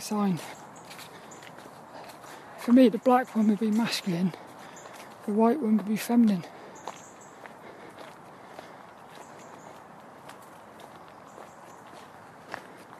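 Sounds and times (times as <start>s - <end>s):
speech: 0.0s - 0.6s, 2.6s - 4.4s, 5.3s - 6.6s
soft footsteps walking down a little outdoor path: 0.0s - 12.9s.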